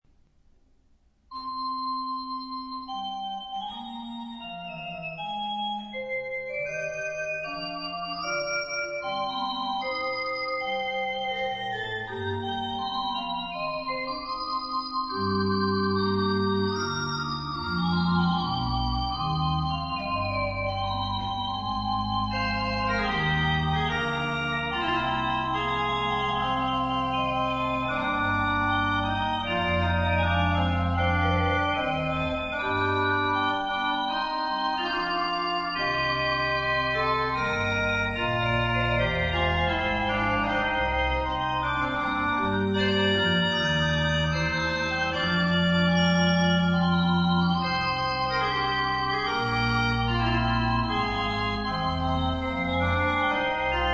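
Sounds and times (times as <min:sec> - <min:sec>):
organ playing: 0:01.3 - 0:53.9.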